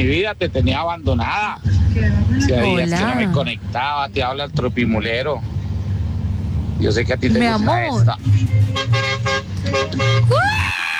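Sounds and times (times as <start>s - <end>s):
speech: 0.0s - 5.6s, 6.8s - 10.8s
big air horn on a truck: 7.6s - 10.5s.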